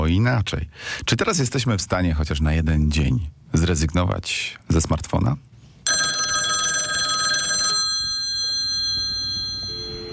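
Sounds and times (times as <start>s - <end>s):
speech: 0.1s - 5.5s
telephone bell ringing: 5.9s - 10.1s.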